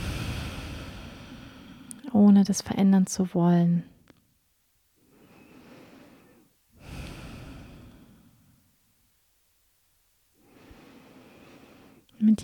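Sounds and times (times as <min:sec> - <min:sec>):
deep breathing in and out: 0:00.0 - 0:02.0, 0:05.0 - 0:08.8, 0:10.4 - 0:12.2
speech: 0:02.1 - 0:03.9.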